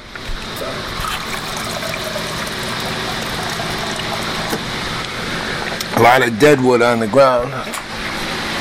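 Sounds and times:
water trickling and splashing: 0:01.0 - 0:04.7
speech: 0:06.0 - 0:07.9.

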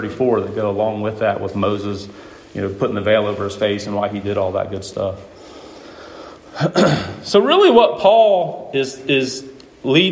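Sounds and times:
speech: 0:00.0 - 0:05.4, 0:06.6 - 0:10.0
person sneezing: 0:06.5 - 0:07.3.

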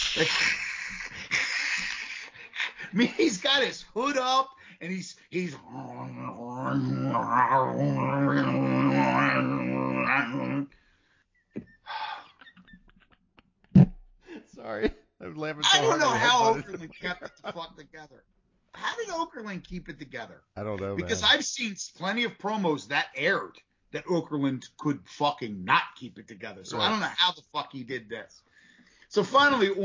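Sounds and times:
laughter: 0:00.0 - 0:03.6, 0:11.6 - 0:13.2, 0:15.6 - 0:18.0
speech: 0:00.2 - 0:01.0, 0:02.9 - 0:10.8, 0:14.6 - 0:28.5, 0:29.1 - 0:29.8
man making hissing growling cat and snake noises: 0:05.5 - 0:10.7.

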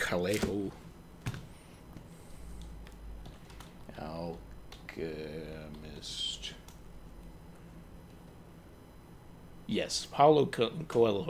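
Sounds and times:
low hum: 0:00.0 - 0:11.2
speech: 0:00.1 - 0:00.9, 0:05.0 - 0:06.2, 0:09.7 - 0:11.2
typing on a computer keyboard: 0:02.8 - 0:03.8.

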